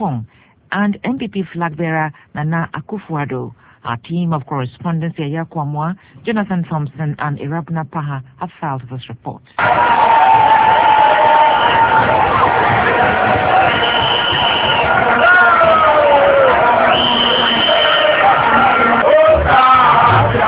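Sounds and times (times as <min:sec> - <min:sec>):
speech: 0:00.0 - 0:10.5
huge rally crowd cheering, shouting and whooping: 0:09.6 - 0:20.4
whistle-like calls from the crowd: 0:13.5 - 0:15.0, 0:16.8 - 0:18.2.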